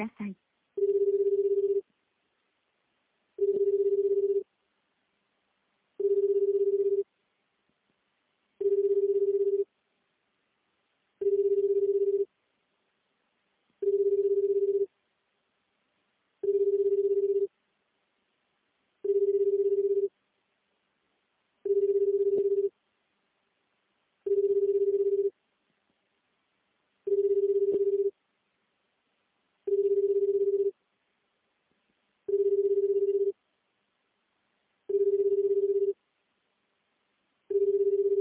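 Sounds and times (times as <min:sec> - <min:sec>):
phone line ringing out with low-pitched tones: 0:00.8 - 0:01.8, 0:03.4 - 0:04.4, 0:06.0 - 0:07.0, 0:08.6 - 0:09.6, 0:11.2 - 0:12.3, 0:13.8 - 0:14.9, 0:16.4 - 0:17.5, 0:19.1 - 0:20.1, 0:21.7 - 0:22.7, 0:24.3 - 0:25.3, 0:27.1 - 0:28.1, 0:29.7 - 0:30.7, 0:32.3 - 0:33.3, 0:34.9 - 0:36.0, 0:37.5 - 0:38.2.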